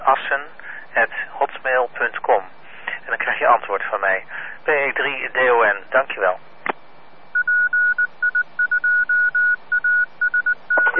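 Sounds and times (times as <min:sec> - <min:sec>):
faint hiss: 0:00.0 - 0:10.9
speech: 0:00.1 - 0:06.5
electronic telephone dialing tones: 0:07.4 - 0:10.9.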